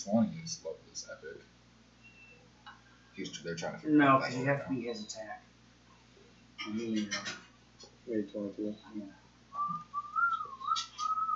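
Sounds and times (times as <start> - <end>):
speech: 0.0 - 1.6, 3.2 - 5.5, 6.6 - 7.4, 8.1 - 9.9
soft breathy human whistling a wavering tune: 2.0 - 2.5, 9.5 - 11.3.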